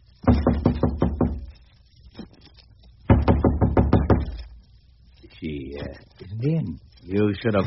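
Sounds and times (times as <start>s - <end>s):
knocking on a hotel room door on the 14th floor: 0.2s - 1.5s, 3.1s - 4.4s
speech: 5.9s - 7.6s.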